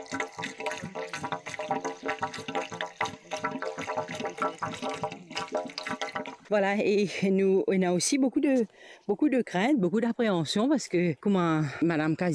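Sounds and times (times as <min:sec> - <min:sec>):
low-pressure water running from a tap into a basin: 0:00.0 - 0:06.6
speech: 0:06.5 - 0:12.3.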